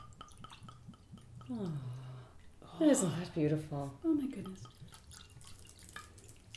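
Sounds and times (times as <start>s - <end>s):
wine trickling into a glass: 0.0s - 2.6s, 4.3s - 6.5s
bright dripping plinks of wine: 0.0s - 3.1s, 4.0s - 6.5s
speech: 1.5s - 2.0s, 2.8s - 4.9s.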